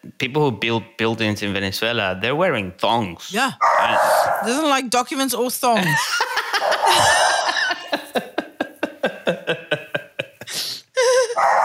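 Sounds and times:
speech: 0:00.1 - 0:07.2
dog barking for a treat: 0:03.6 - 0:04.6, 0:06.6 - 0:07.7, 0:11.4 - 0:11.6
laughter: 0:05.8 - 0:11.3.

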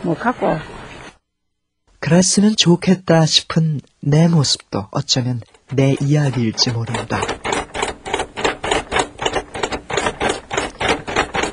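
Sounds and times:
speech: 0:00.0 - 0:00.8, 0:02.0 - 0:07.4
braille typewriter typing: 0:05.5 - 0:11.5.

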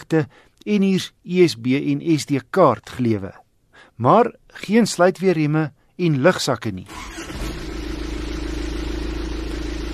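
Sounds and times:
speech: 0:00.1 - 0:03.4, 0:04.0 - 0:07.4
turbo diesel pickup engine starting and idling, windows open: 0:06.9 - 0:09.9.

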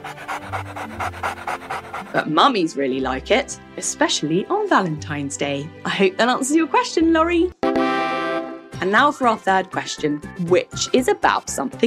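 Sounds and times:
dog panting: 0:00.0 - 0:02.5
speech: 0:00.5 - 0:07.6, 0:08.8 - 0:11.8.

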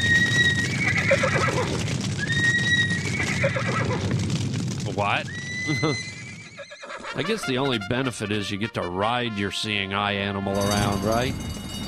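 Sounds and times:
horse neighing: 0:00.0 - 0:04.0, 0:05.2 - 0:07.8
faint horse hoof clatter: 0:00.0 - 0:07.8, 0:10.5 - 0:11.8
speech: 0:05.0 - 0:06.1, 0:07.2 - 0:11.6
laughter: 0:05.7 - 0:06.0, 0:07.0 - 0:08.7.

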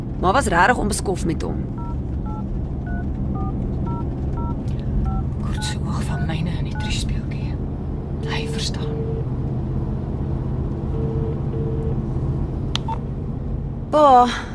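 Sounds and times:
constant low rumble: 0:00.0 - 0:14.5
speech: 0:00.2 - 0:01.8, 0:05.6 - 0:07.4, 0:08.2 - 0:09.3, 0:13.9 - 0:14.5
dialing beeps from a phone keypad: 0:01.8 - 0:06.9.

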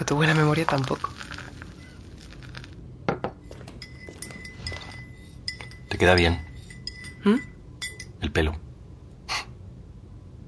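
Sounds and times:
cups and dishes clinking while someone makes coffee: 0:00.0 - 0:08.2
speech: 0:00.1 - 0:01.4, 0:06.0 - 0:06.5, 0:07.2 - 0:07.5, 0:08.2 - 0:08.6.

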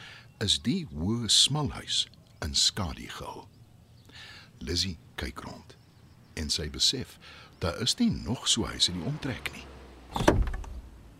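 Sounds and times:
speech: 0:00.4 - 0:03.6, 0:04.2 - 0:05.8, 0:06.4 - 0:10.6
car door latch click: 0:10.1 - 0:10.9.

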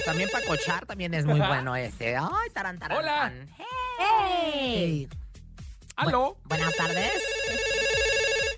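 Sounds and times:
telephone ringing with a steady electronic tone: 0:00.0 - 0:00.8, 0:06.5 - 0:08.5
speech: 0:00.0 - 0:05.2, 0:06.0 - 0:07.7.

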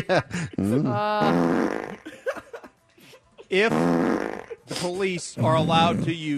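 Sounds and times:
speech: 0:00.0 - 0:02.2, 0:03.5 - 0:06.3
long loud buzzy fart: 0:00.6 - 0:02.0, 0:03.6 - 0:04.6, 0:05.4 - 0:06.1.

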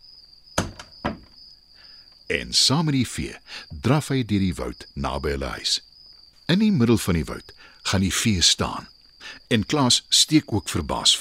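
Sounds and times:
second muted knock of a front door: 0:00.6 - 0:01.3
front door eased shut with a soft thud: 0:00.6 - 0:01.4
speech: 0:02.3 - 0:05.9, 0:06.5 - 0:11.1.

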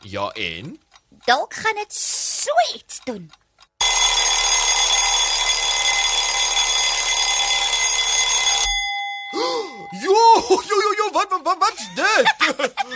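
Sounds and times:
speech: 0:00.0 - 0:03.4, 0:09.3 - 0:12.9
alarm clock ringing with harsh buzzing metallic tone: 0:03.8 - 0:11.2
laughter: 0:10.0 - 0:12.9.

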